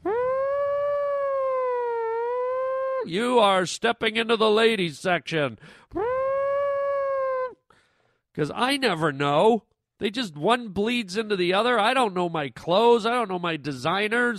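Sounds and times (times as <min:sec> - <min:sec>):
voice imitating an air raid siren: 0:00.0 - 0:03.4, 0:05.9 - 0:07.6
speech: 0:03.0 - 0:06.1, 0:08.4 - 0:14.3.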